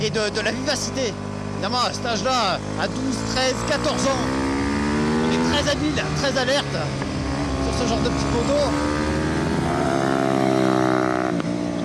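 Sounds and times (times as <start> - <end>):
speech: 0.0 - 4.5, 5.6 - 7.0, 7.7 - 9.1
small-block racing motorcycle engine running: 0.0 - 11.8.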